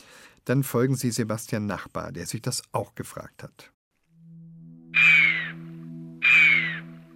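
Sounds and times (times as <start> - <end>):
speech: 0.5 - 3.8
chamois warning whistles: 5.0 - 5.6, 6.2 - 6.8.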